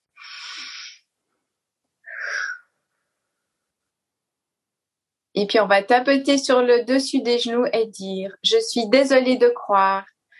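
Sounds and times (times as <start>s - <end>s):
deep breath in and out: 0.2s - 1.1s, 2.1s - 2.7s
speech: 5.4s - 10.1s.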